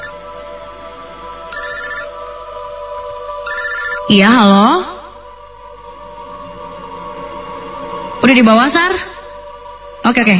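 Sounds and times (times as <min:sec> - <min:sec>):
steady tonal hum: 0:00.0 - 0:10.3
mobile phone ringing on a bed: 0:01.5 - 0:02.2, 0:03.5 - 0:04.2
speech: 0:04.1 - 0:04.9, 0:08.3 - 0:09.1, 0:10.1 - 0:10.3.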